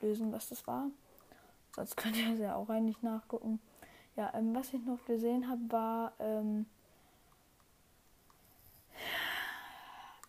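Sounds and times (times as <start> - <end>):
speech: 0.0 - 1.1, 1.8 - 6.8
harsh airy exhale into the microphone: 8.9 - 10.2.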